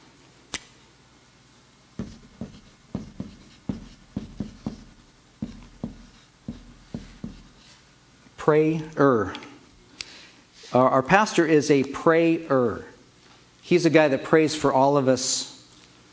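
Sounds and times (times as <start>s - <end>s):
writing on a board: 2.0s - 7.8s
speech: 8.4s - 9.5s, 10.7s - 12.9s, 13.7s - 15.5s.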